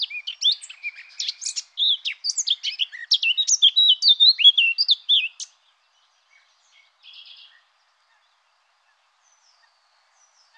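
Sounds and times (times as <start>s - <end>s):
Eurasian blackcap song: 0.0s - 5.6s, 6.2s - 7.7s.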